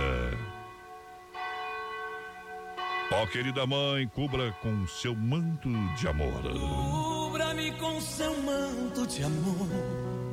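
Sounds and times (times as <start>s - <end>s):
large cathedral church bell tolling: 0.0s - 7.7s
speech: 3.2s - 10.2s.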